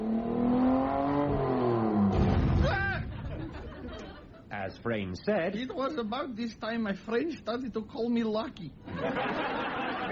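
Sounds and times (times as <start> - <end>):
car engine revving and pulling away: 0.0 - 2.4
laughter: 2.8 - 4.5, 8.9 - 10.1
speech: 4.8 - 9.6.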